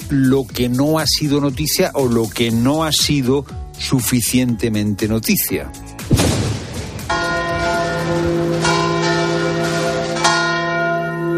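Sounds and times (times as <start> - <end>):
speech: 0.1 - 5.9
church bells ringing: 7.0 - 11.3.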